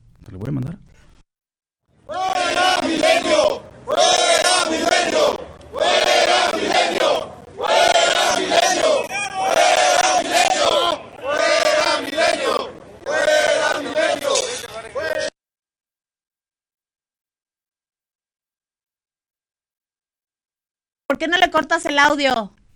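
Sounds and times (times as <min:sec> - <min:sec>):
speech: 0:00.2 - 0:01.0, 0:21.2 - 0:22.6
angry crowd of federal police officers shouting in unison: 0:02.0 - 0:15.4.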